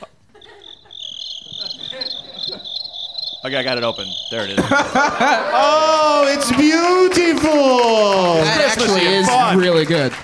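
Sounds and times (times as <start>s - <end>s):
laughter: 0.0s - 2.9s, 4.4s - 7.1s
cricket chirping in a high-pitched trill: 0.0s - 5.4s
speech: 3.4s - 10.2s.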